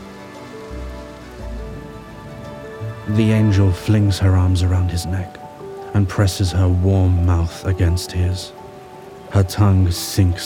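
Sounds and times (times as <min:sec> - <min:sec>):
low rumbling swells beneath the downpour: 0:00.0 - 0:10.0
heavy rain pouring: 0:00.0 - 0:10.4
speech: 0:03.1 - 0:05.4, 0:06.0 - 0:08.6, 0:09.3 - 0:10.4.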